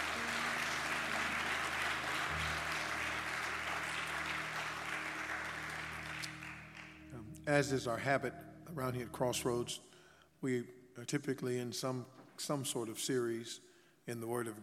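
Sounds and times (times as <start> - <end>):
large crowd applauding in a Baptist church: 0.0 - 7.1
speech: 7.5 - 14.6.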